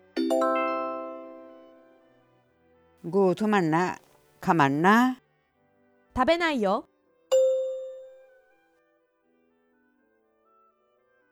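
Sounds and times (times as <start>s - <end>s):
two-note electronic ding-dong quiz answer chime: 0.0s - 2.0s, 7.3s - 8.2s
speech: 3.0s - 5.2s, 6.2s - 6.9s.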